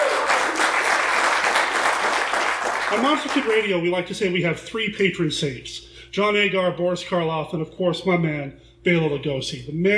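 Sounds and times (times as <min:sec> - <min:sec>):
crowd clapping: 0:00.0 - 0:03.7
speech: 0:02.9 - 0:09.9.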